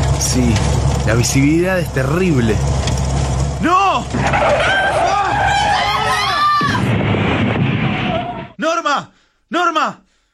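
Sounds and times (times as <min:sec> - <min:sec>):
rough noisy rumble: 0:00.0 - 0:08.6
speech: 0:00.2 - 0:02.9, 0:03.6 - 0:05.1, 0:08.6 - 0:10.0
heavy car crash: 0:03.2 - 0:08.6
car tires squealing in a skid: 0:03.9 - 0:08.6.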